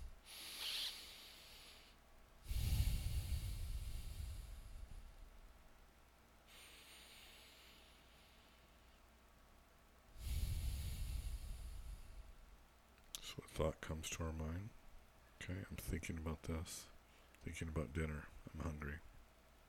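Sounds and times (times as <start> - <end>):
deep airy breaths during a guided meditation: 0.0 - 5.4, 6.4 - 9.0, 10.1 - 12.6
speech: 13.6 - 14.8, 15.4 - 19.1.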